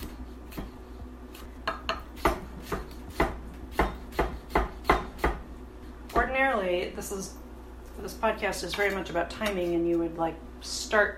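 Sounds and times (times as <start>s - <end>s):
knife chopping strips of food into quarter-inch cubes: 0.0s - 5.5s
speech: 6.9s - 7.4s, 8.0s - 11.1s.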